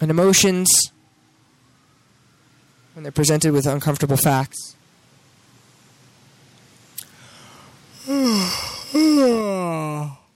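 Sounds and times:
speech: 0.0 - 1.0, 3.0 - 4.8, 8.1 - 10.2
person yawning: 7.2 - 10.3.

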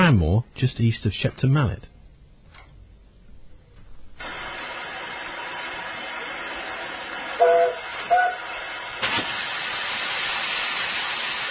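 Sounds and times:
speech: 0.1 - 1.9
steam train on a preserved railway in Somerset rumbling and chuffing with a broad hiss: 4.2 - 11.4
steam train whistle toots: 7.0 - 8.7.

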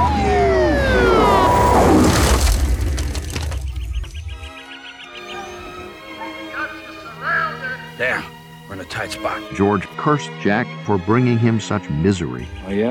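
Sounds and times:
police siren wailing: 0.0 - 3.2
heavy engine rumble: 0.0 - 4.4
speech: 9.2 - 12.9.

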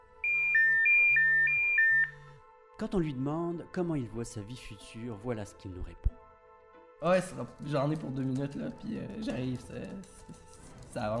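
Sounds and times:
alarm clock ringing with bright two-note electronic chime: 0.2 - 2.3
speech: 2.8 - 6.2, 7.0 - 11.1.

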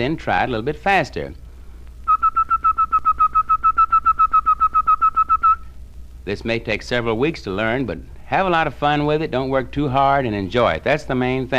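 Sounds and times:
speech: 0.0 - 1.4, 6.3 - 11.5
whistled T articulation in rapid tongued notes: 2.0 - 5.7.

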